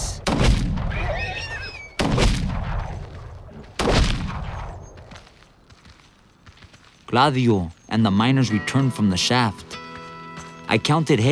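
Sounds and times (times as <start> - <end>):
gunshots fired down at injured horses: 0.0 - 1.3, 2.0 - 5.1
speech: 7.1 - 9.7, 10.7 - 11.3.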